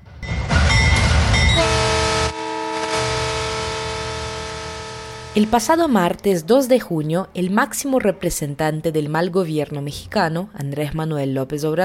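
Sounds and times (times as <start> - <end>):
loud rumbling rail noise: 0.0 - 6.5
train horn signalling the start of a train: 1.4 - 6.0
speech: 5.4 - 11.8.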